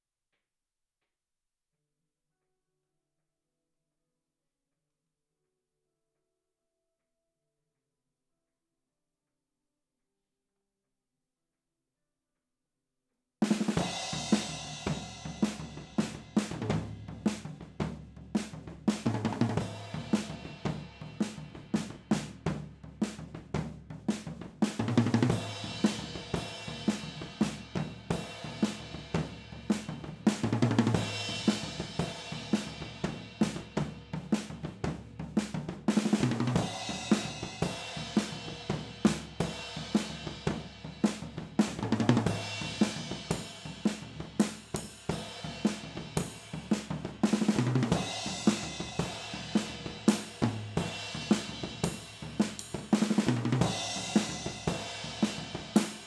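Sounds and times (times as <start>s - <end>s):
drums recorded overhead in stereo: 13.4s - 56.0s.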